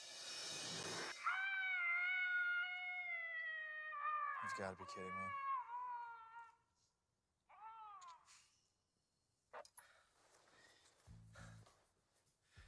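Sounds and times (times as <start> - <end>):
person attempting a wolf howl sounding like a cat: 1.2 - 6.6
speech: 4.4 - 5.5.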